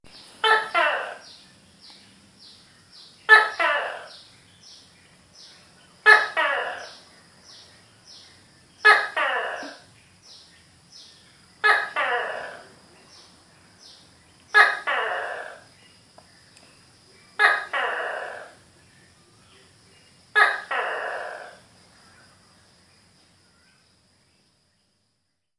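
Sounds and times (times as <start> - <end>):
gecko calling: 0.1 - 1.4, 2.4 - 4.3, 5.4 - 8.2, 8.8 - 16.0, 17.3 - 18.7, 20.3 - 22.3.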